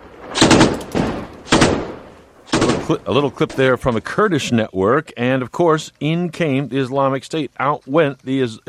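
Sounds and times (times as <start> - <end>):
gunfire in Ramadi Iraq: 0.0 - 3.2
speech: 2.9 - 8.6.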